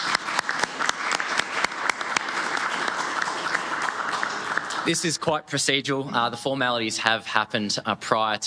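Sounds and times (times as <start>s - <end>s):
crowd clapping at a council meeting: 0.0s - 5.8s
speech: 4.8s - 8.4s.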